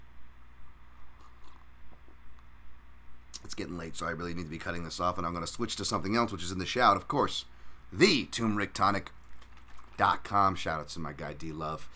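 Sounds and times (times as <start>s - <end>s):
person sipping coffee from a mug: 0.9s - 2.2s, 9.3s - 10.0s
swallowing: 1.0s - 2.2s, 9.2s - 10.0s
speech: 3.6s - 9.2s, 10.0s - 11.9s.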